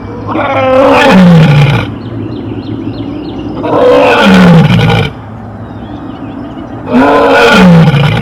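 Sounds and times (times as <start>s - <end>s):
lion roaring: 0.3s - 1.9s, 3.6s - 5.2s, 6.9s - 8.1s.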